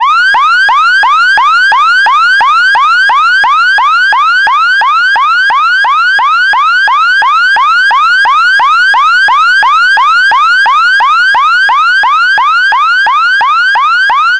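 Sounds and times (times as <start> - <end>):
electronic yelp siren: 0.0 - 14.3.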